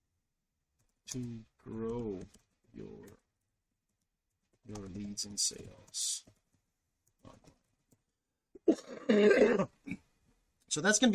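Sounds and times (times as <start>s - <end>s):
speech: 1.1s - 3.2s, 4.7s - 6.4s, 8.7s - 10.0s, 10.7s - 11.1s
person with a cold coughing: 8.6s - 10.0s.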